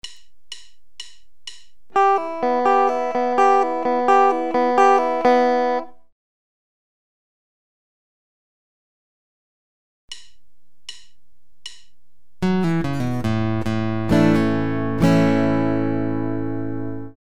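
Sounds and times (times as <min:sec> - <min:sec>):
guitar single-note pull-offs to open strings: 0:01.9 - 0:06.0, 0:12.4 - 0:17.2.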